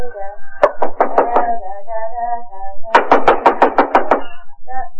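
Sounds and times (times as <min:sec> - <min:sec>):
rapid knocking on a door: 0:00.6 - 0:01.5, 0:02.9 - 0:04.3.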